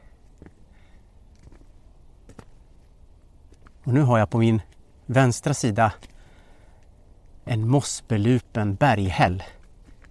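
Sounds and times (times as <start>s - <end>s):
soft footsteps crunching on outdoor ground: 0.2s - 5.1s, 5.8s - 7.4s, 9.1s - 10.0s
speech: 3.9s - 6.1s, 7.5s - 9.6s.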